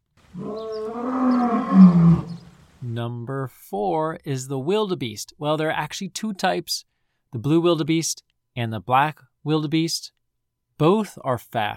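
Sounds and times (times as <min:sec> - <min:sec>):
lion roaring: 0:00.3 - 0:02.6
speech: 0:00.4 - 0:01.2, 0:03.0 - 0:10.2, 0:10.8 - 0:11.7.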